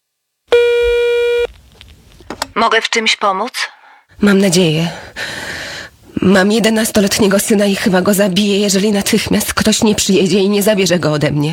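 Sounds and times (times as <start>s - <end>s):
telephone ringback tone on a call to social services: 0.5s - 1.5s
speech: 2.6s - 5.4s, 6.2s - 11.5s.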